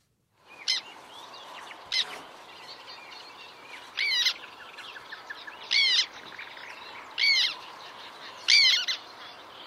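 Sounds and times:
black tern squeaking calls: 1.7 - 9.4.

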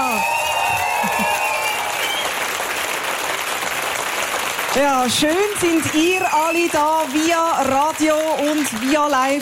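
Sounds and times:
shouted whoops: 0.0 - 2.4
crowd cheering and whistling: 0.0 - 2.6, 6.3 - 6.9
crowd applauding: 0.0 - 9.4
speech: 4.8 - 9.4.

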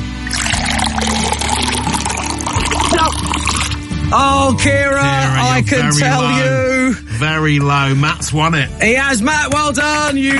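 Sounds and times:
liquid pouring into a jug: 0.0 - 3.9
speech: 4.1 - 10.3.

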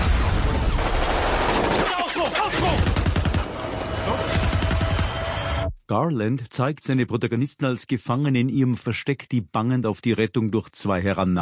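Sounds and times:
booming explosions: 0.0 - 5.5
crackling impacts: 0.0 - 5.7
rattling bursts of rapid gunfire: 0.7 - 3.6, 4.3 - 5.2
speech: 5.9 - 11.4.

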